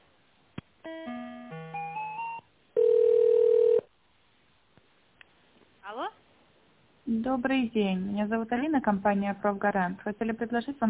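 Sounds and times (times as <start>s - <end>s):
steady louder telephone line beep: 2.8s - 3.9s
speech: 7.2s - 10.8s.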